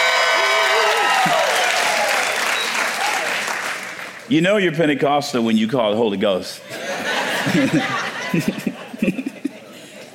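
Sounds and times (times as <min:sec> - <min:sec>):
congregation clapping at a Pentecostal church service: 0:00.0 - 0:04.3
speech: 0:04.3 - 0:06.8, 0:07.4 - 0:09.3
laughter: 0:06.6 - 0:10.1.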